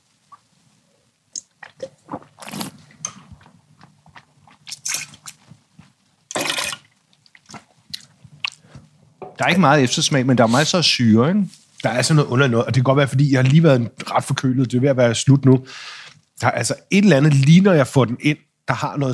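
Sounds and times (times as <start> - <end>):
lip smacks and tongue clicks: 1.3 - 5.6, 7.2 - 8.7
person slurping biodynamic wine while tasting: 1.4 - 5.5
speech: 9.4 - 19.1.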